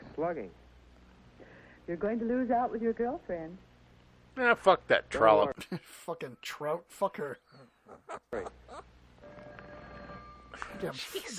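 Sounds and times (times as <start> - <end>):
speech: 0.2 - 0.6, 1.9 - 3.7, 4.4 - 8.9, 10.6 - 11.3
telephone ringing with a quiet electronic tone: 9.2 - 10.6.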